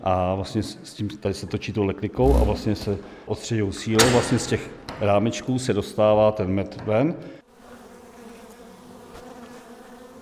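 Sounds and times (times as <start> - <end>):
speech: 0.0 - 7.4
honeybee drones buzzing on mating flights: 7.4 - 10.2.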